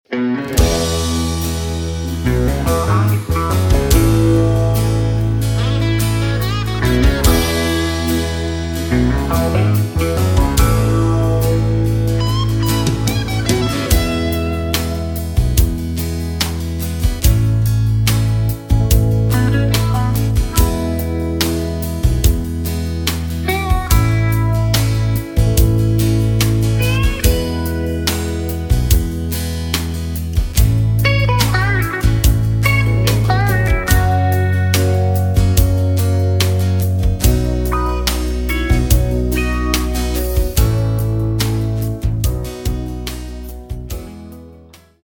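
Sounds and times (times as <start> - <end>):
backing track music in E without backing vocals: 0.0 - 45.0.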